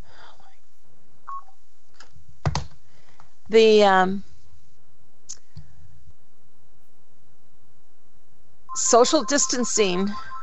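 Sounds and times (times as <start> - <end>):
speech: 3.5 - 4.3, 8.9 - 10.3
bright electronic phone ringing tone: 8.7 - 10.4.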